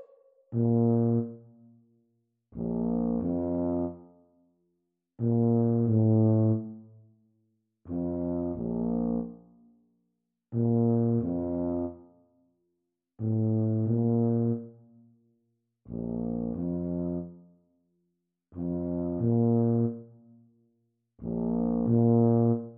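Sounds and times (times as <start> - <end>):
B-flat tuba duet: 0.5 - 1.6, 2.6 - 4.1, 5.2 - 6.8, 7.9 - 9.5, 10.5 - 12.1, 13.2 - 14.8, 15.9 - 17.4, 18.6 - 20.3, 21.2 - 22.7.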